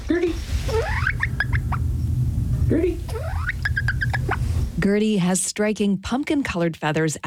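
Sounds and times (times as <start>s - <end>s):
steady low rumble of noise in a living room: 0.0s - 5.7s
bantam hen giving soft rising peeps in a dog crate: 0.4s - 2.2s, 2.9s - 4.6s
speech: 2.7s - 3.0s, 4.8s - 7.2s.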